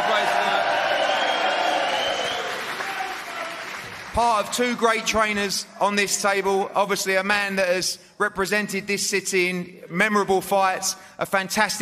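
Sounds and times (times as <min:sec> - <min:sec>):
crowd applauding: 0:00.0 - 0:05.1
speech: 0:04.2 - 0:11.7.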